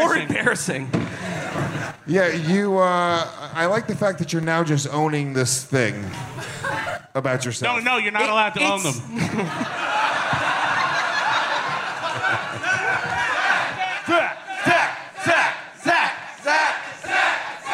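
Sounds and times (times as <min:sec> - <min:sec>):
laughter: 0:00.0 - 0:03.3, 0:06.2 - 0:17.7
speech: 0:00.2 - 0:10.1
large crowd roaring: 0:09.6 - 0:17.7.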